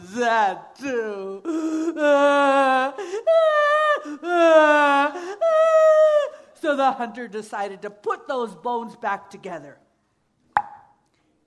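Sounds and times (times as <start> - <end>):
voice imitating a small child crying: 0.0 - 6.5
speech: 0.2 - 3.0, 6.7 - 9.9.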